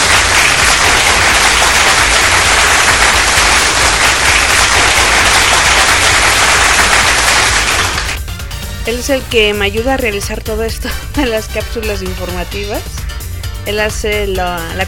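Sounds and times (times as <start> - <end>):
crowd applauding: 0.0 - 8.2
speech: 8.9 - 14.8.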